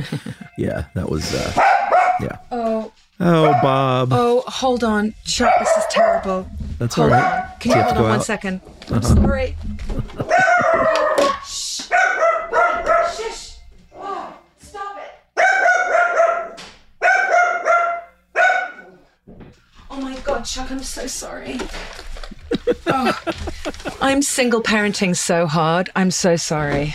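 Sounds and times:
laughter: 0:00.0 - 0:01.6, 0:09.7 - 0:11.3, 0:22.2 - 0:24.3
speech: 0:00.0 - 0:11.9, 0:20.4 - 0:22.0, 0:22.7 - 0:26.9
dog barking at a delivery person: 0:01.5 - 0:02.4, 0:03.4 - 0:03.8, 0:05.4 - 0:06.4, 0:07.0 - 0:08.2, 0:10.2 - 0:13.4, 0:15.4 - 0:19.1.

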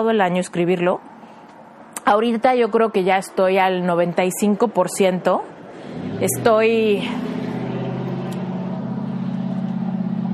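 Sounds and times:
speech: 0:00.0 - 0:01.1, 0:02.1 - 0:07.3
loud car engine drone passing by: 0:05.6 - 0:10.3.

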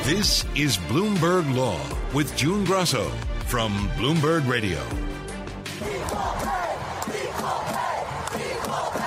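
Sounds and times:
speech: 0:00.1 - 0:05.1
large stadium crowd cheering at soccer match: 0:05.7 - 0:09.0.

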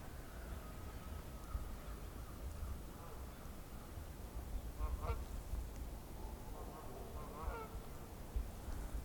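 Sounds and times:
steady outdoor noise: 0:00.0 - 0:09.0
flock of Canada geese honking overhead: 0:06.7 - 0:07.8.

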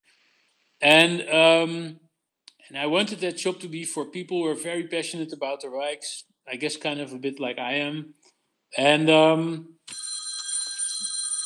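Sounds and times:
speech: 0:00.8 - 0:02.0, 0:02.7 - 0:10.0
mobile phone ringing with high electronic warbling tone: 0:09.9 - 0:11.4.

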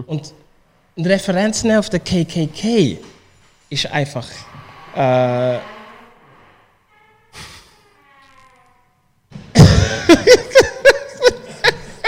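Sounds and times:
speech: 0:00.0 - 0:00.4, 0:01.0 - 0:03.1, 0:03.7 - 0:05.7
very loud door creaking open: 0:04.3 - 0:09.6
laughter: 0:09.6 - 0:12.0.

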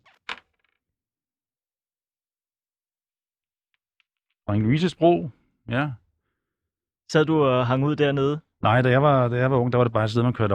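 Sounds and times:
dice clattering onto a hard surface: 0:00.0 - 0:00.8
speech: 0:04.5 - 0:06.0, 0:07.1 - 0:10.5.

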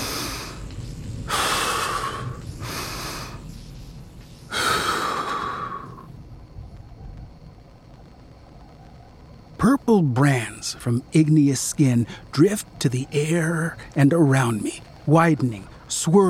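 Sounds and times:
heavy deliberate breathing: 0:00.0 - 0:03.5, 0:04.5 - 0:06.1
speech: 0:09.9 - 0:16.2.

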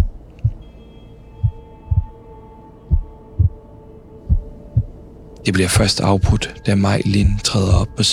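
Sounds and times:
man's own pounding heartbeat in low heavy double beats: 0:00.0 - 0:00.6, 0:01.4 - 0:02.1, 0:02.9 - 0:03.6, 0:04.3 - 0:05.0, 0:07.2 - 0:07.9
steady droning hum: 0:00.0 - 0:08.1
speech: 0:05.5 - 0:08.1.

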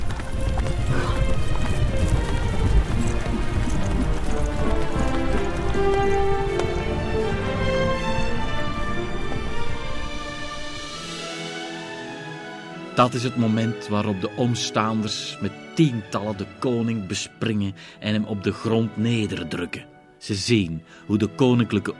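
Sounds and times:
dense rumbling background: 0:00.0 - 0:11.0
horse hooves galloping: 0:00.0 - 0:11.3
speech: 0:13.0 - 0:21.9.

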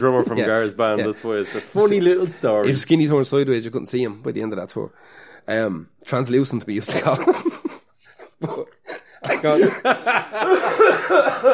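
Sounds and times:
speech: 0:00.0 - 0:07.5, 0:08.4 - 0:08.7, 0:09.4 - 0:11.5
laughter: 0:06.9 - 0:11.5
smoker's hacking wheezy cough: 0:08.2 - 0:09.8.

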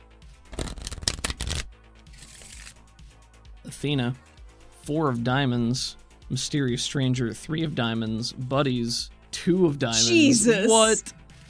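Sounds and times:
deck of playing cards being shuffled: 0:00.4 - 0:02.9
speech: 0:03.7 - 0:11.4.

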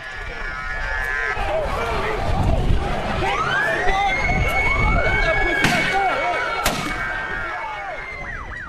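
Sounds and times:
noisy crowd of protesters shouting: 0:00.0 - 0:08.6
wailing siren: 0:00.0 - 0:08.6
rubber bullets fired into a protesting crowd: 0:06.6 - 0:07.0.

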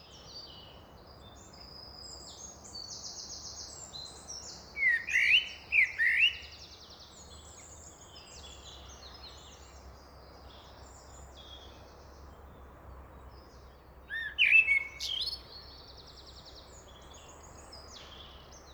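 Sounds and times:
common blackbird singing fluty warbled phrases in a park: 0:04.8 - 0:06.5, 0:14.1 - 0:15.4.

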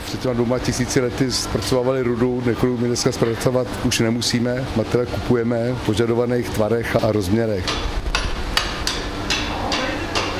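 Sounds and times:
speech: 0:00.1 - 0:07.9
blacksmith hammer striking metal on anvil: 0:07.6 - 0:10.3.

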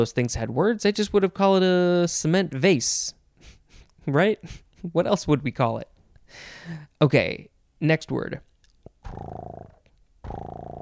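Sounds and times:
speech: 0:00.0 - 0:03.2, 0:04.0 - 0:08.5, 0:09.1 - 0:09.7, 0:10.3 - 0:10.7
cat purring: 0:09.0 - 0:10.7.

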